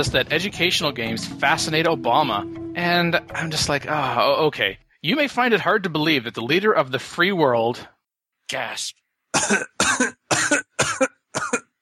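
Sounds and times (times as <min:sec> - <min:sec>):
speech: 0:00.0 - 0:07.9, 0:08.5 - 0:11.6
person coughing: 0:09.4 - 0:11.7.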